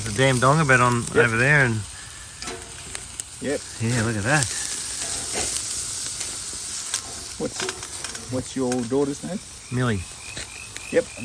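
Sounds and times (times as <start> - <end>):
fire burning in a welded fire pit: 0.0 - 11.2
speech: 0.2 - 1.9, 3.4 - 4.6, 7.4 - 10.2, 10.9 - 11.2.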